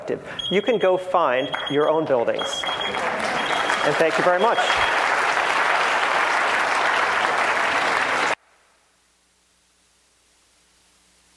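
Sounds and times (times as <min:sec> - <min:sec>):
speech: 0:00.1 - 0:05.0
audience clapping: 0:01.5 - 0:08.4.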